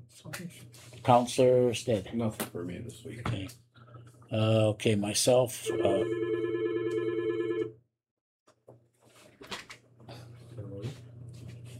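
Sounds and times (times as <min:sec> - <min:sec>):
speech: 0:00.1 - 0:03.6, 0:04.3 - 0:06.5
telephone ringing with a steady electronic warble: 0:05.7 - 0:07.8.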